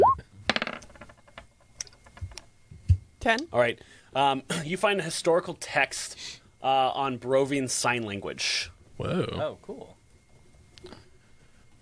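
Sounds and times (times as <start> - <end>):
twelve-sided die clattering across a hard surface: 0.5 - 2.4
speech: 3.2 - 10.0.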